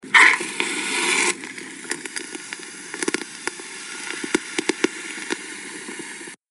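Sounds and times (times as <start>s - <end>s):
hookah bubbling: 0.0s - 6.4s.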